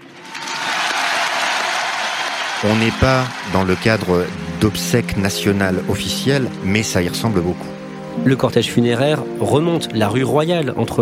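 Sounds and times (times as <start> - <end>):
dense crowd applause honouring a funeral procession in a Paris street: 0.0 - 7.4
speech: 2.6 - 11.0.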